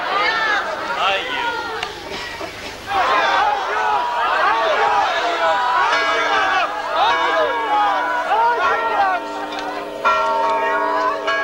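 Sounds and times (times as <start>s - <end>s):
large crowd shouting and chanting: 0.0s - 11.4s
church bells ringing: 4.7s - 11.4s.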